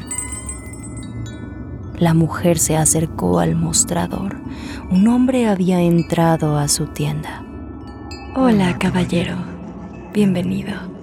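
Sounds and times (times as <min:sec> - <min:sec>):
shop front door bell jingling: 0:00.0 - 0:01.2
low room hum: 0:00.0 - 0:11.0
speech: 0:02.0 - 0:07.5, 0:08.4 - 0:09.5, 0:10.1 - 0:10.9.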